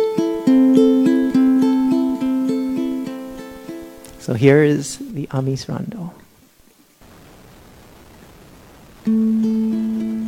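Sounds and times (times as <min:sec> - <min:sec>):
ukulele playing an arpeggio: 0:00.0 - 0:04.2, 0:09.1 - 0:10.2
speech: 0:04.3 - 0:06.2.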